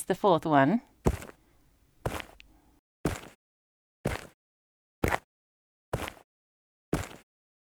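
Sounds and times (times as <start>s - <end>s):
speech: 0.0s - 1.2s
footsteps crunching across dirt: 1.0s - 3.3s, 6.0s - 6.2s, 7.0s - 7.2s.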